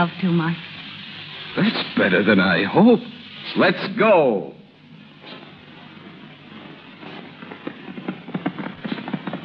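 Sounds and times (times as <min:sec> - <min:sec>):
speech: 0:00.0 - 0:00.7, 0:01.5 - 0:04.6
horses galloping: 0:05.9 - 0:09.4.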